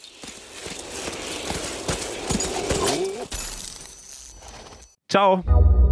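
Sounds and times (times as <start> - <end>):
reindeer hooves clattering in quick irregular steps: 0.0 - 3.3
speech: 5.1 - 5.8.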